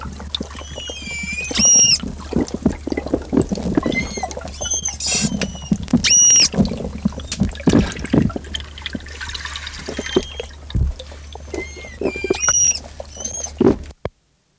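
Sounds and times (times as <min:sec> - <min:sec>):
water sloshing: 0:00.0 - 0:14.0
low steady hum: 0:00.0 - 0:14.5
frightened manatee squeaks: 0:00.4 - 0:02.7, 0:03.3 - 0:07.6, 0:09.7 - 0:13.8.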